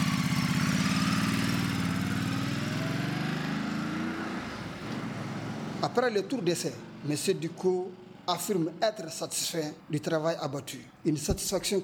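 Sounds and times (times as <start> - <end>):
small just-repaired motorcycle engine starting and running at a repair garage: 0.0 - 8.7
speech: 5.8 - 11.8.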